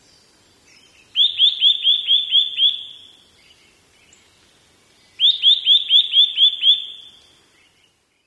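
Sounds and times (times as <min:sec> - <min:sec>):
Eurasian nuthatch giving quick clear rising whistled notes: 0:01.2 - 0:03.1, 0:05.2 - 0:07.1.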